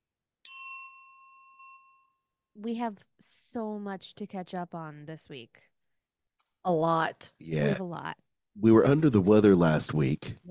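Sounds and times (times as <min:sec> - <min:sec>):
notification bell ding: 0:00.5 - 0:02.0
speech: 0:02.6 - 0:05.7, 0:06.6 - 0:10.4.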